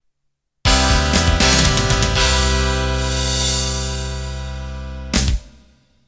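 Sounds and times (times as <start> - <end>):
pop rock ending: 0.7 - 5.5.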